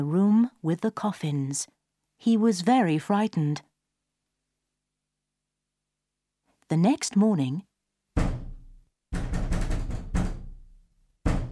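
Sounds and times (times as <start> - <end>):
speech: 0.0 - 3.7, 6.7 - 7.7
loud knocking on a wooden door: 8.2 - 11.5.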